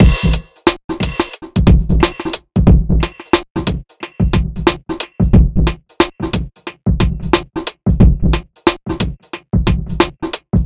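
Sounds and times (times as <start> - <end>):
abstract electro funk breakbeat: 0.0 - 10.3.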